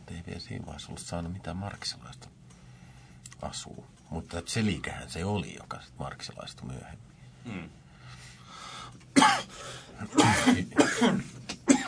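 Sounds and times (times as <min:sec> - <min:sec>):
speech: 0:00.3 - 0:02.4, 0:03.4 - 0:07.8, 0:10.0 - 0:11.3
person coughing in harsh spasmodic bursts: 0:09.2 - 0:11.8.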